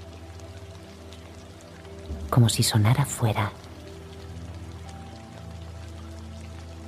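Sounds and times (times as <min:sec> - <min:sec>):
steady rain falling: 0:00.0 - 0:06.8
speech: 0:02.3 - 0:03.6.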